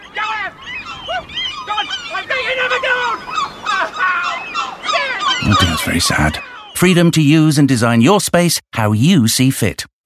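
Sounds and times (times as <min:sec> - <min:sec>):
hungry seagull squawking at a man with chips: 0:00.0 - 0:06.8
speech: 0:05.5 - 0:09.9.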